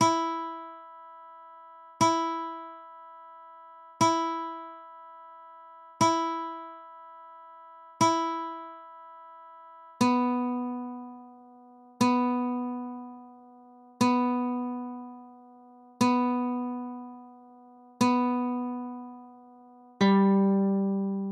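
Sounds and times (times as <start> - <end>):
guitar tuner tone: 0.0 - 21.3.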